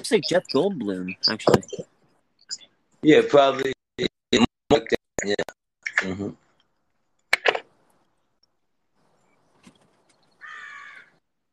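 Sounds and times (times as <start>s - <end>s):
speech: 0.0s - 1.9s, 3.0s - 4.4s, 5.2s - 6.4s
crows cawing outside by a balcony deck in the morning: 10.4s - 11.2s.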